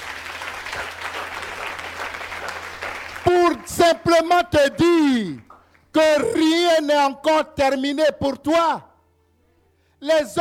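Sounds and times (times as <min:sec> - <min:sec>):
crowd applauding at a church service: 0:00.0 - 0:03.8
speech: 0:03.6 - 0:05.4, 0:06.0 - 0:08.9, 0:10.0 - 0:10.3.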